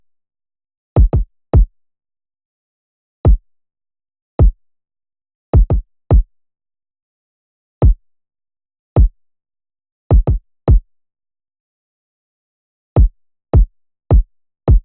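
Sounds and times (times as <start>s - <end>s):
kick drum in E minor: 1.0s - 1.7s, 5.6s - 6.3s, 10.1s - 10.8s, 13.0s - 14.8s.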